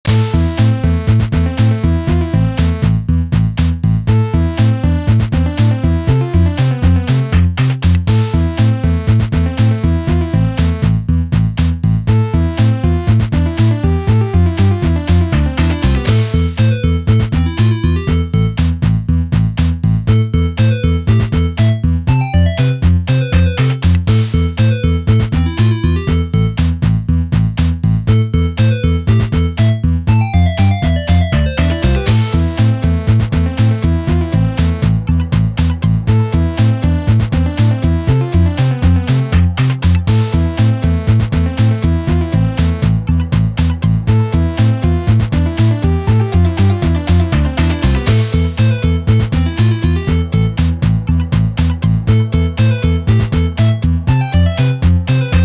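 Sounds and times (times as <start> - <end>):
music: 0.0 - 55.4.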